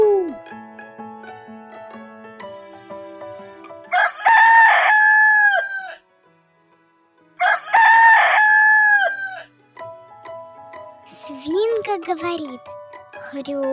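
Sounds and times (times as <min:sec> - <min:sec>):
rooster crowing: 0:03.9 - 0:06.0, 0:07.4 - 0:09.5
speech: 0:12.2 - 0:13.7.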